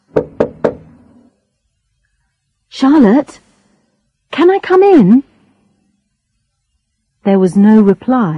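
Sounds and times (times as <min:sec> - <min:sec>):
knocking on a wooden door: 0:00.1 - 0:00.9
speech: 0:02.8 - 0:03.4, 0:04.4 - 0:05.3, 0:07.2 - 0:08.3.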